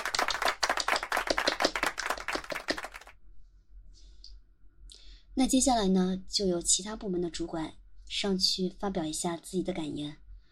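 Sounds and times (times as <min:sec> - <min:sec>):
applause from a small group at a company staff meeting: 0:00.0 - 0:03.1
speech: 0:05.4 - 0:10.2.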